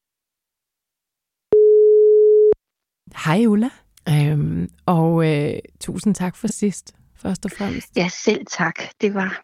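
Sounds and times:
telephone ringback tone while calling someone: 1.5 - 2.5
speech: 3.2 - 9.4.

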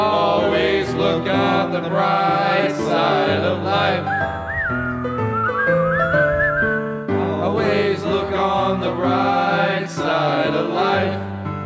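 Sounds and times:
instrumental backing music: 0.0 - 11.6
whistled melody: 3.9 - 7.2, 11.5 - 11.6.

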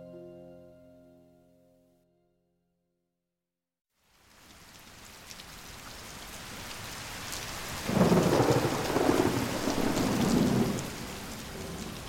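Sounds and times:
steady rain in central London before nightfall: 4.0 - 12.0
low rumble of thunder in central London: 7.9 - 12.0.

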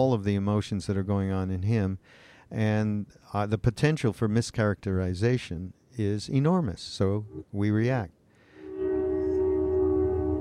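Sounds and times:
speech: 0.0 - 8.2
train whistle blast: 8.5 - 10.3.

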